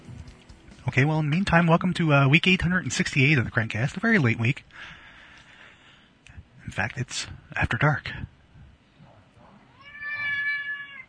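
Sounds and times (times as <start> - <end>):
speech: 0.9 - 5.0, 6.7 - 8.4
cat meowing: 9.6 - 11.0.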